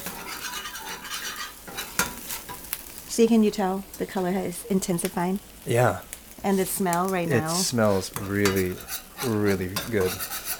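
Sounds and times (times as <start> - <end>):
utensil clinking against a pan: 0.0 - 2.7, 8.1 - 10.5
spoon stirring curry paste into coconut milk in a pan: 0.0 - 3.0, 6.3 - 10.5
speech: 3.2 - 10.4.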